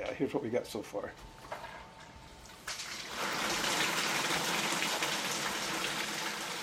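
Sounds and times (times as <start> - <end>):
speech: 0.0 - 1.6
water feature shower raining down: 2.5 - 6.6.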